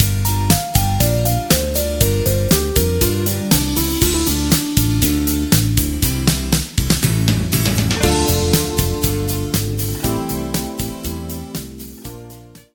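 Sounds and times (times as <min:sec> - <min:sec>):
song in D minor without backing vocals: 0:00.2 - 0:06.5, 0:07.8 - 0:12.4.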